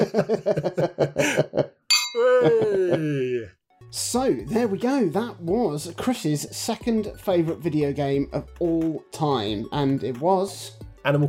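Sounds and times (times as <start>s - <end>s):
speech: 0.0s - 1.4s, 4.1s - 11.2s
laughter: 0.0s - 3.5s
glasses clinking in a toast: 1.9s - 2.6s.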